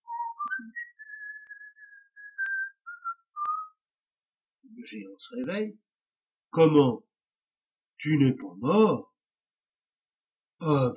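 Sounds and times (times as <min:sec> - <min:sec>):
person whistling a short light tune: 0:00.0 - 0:03.8
speech: 0:04.8 - 0:05.8, 0:06.5 - 0:07.1, 0:08.0 - 0:09.1, 0:10.6 - 0:10.9.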